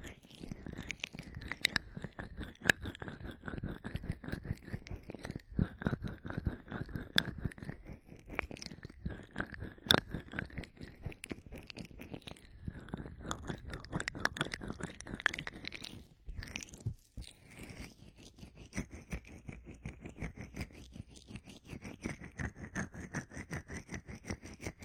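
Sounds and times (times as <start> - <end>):
ear massage scratching and rubbing with crunchy clicks: 0.0 - 24.8.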